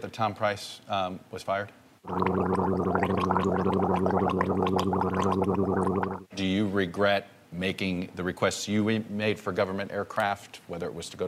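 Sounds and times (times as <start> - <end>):
speech: 0.0 - 11.2
gargling sounds dubbed over a man talking in a video: 2.0 - 6.3.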